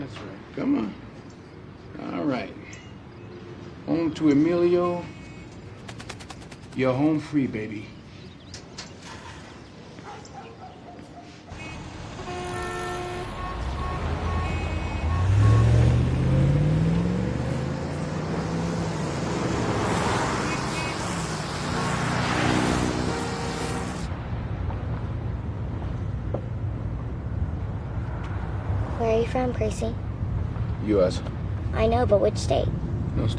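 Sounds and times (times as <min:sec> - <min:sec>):
speech: 0:00.1 - 0:01.1, 0:02.0 - 0:02.8, 0:03.9 - 0:05.2, 0:06.8 - 0:08.0, 0:29.4 - 0:30.0, 0:30.9 - 0:33.3
car horn toots: 0:11.5 - 0:16.2, 0:22.8 - 0:24.1
car driving on a road: 0:11.5 - 0:33.2.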